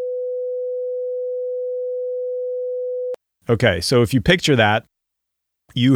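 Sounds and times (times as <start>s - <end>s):
500 hertz sine wave tone: 0.0s - 3.2s
speech: 3.5s - 4.9s, 5.7s - 5.9s.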